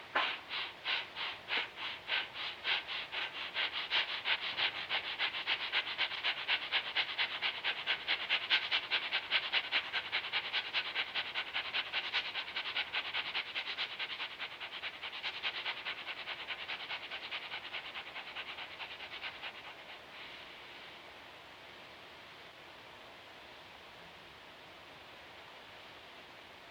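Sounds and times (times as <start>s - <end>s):
rapid forceful breathing exercise: 0.0s - 20.7s.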